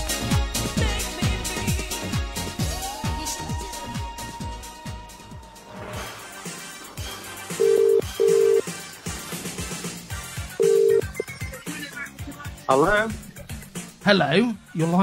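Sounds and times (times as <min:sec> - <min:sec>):
music: 0:00.0 - 0:15.0
telephone ring tones: 0:07.6 - 0:08.7, 0:10.6 - 0:11.2
speech: 0:12.7 - 0:13.2, 0:14.0 - 0:15.0.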